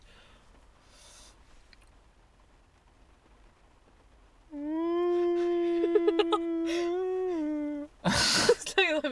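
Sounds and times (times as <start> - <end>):
person imitating a whale call with a low wavering moan: 4.5 - 7.9.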